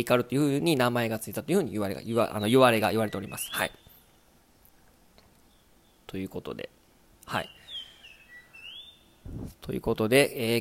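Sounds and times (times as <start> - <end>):
speech: 0.0 - 3.9, 6.1 - 7.6, 9.3 - 10.5
Japanese grosbeak song of sliding whistled notes: 2.3 - 4.2, 7.3 - 9.5.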